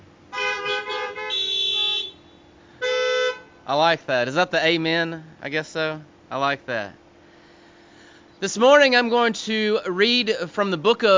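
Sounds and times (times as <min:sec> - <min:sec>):
car horn honking: 0:00.3 - 0:03.7
speech: 0:03.7 - 0:07.0, 0:08.4 - 0:11.1.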